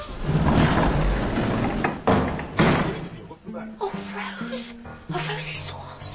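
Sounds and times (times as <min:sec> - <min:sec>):
heavy doors slamming shut: 0:00.0 - 0:03.2.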